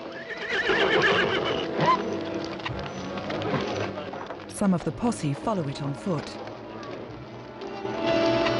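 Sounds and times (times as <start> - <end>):
clip-clop hoofbeats of horse trotting away: 0.0 - 8.5
scuffle of horse hooves: 0.0 - 8.5
horse loud quavering whinny: 0.2 - 2.2
speech: 4.6 - 6.5.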